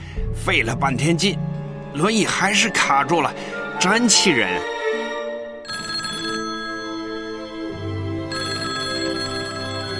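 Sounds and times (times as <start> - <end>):
speech: 0.4 - 4.7
telephone ringing with a melodic electronic ringtone: 5.6 - 9.9.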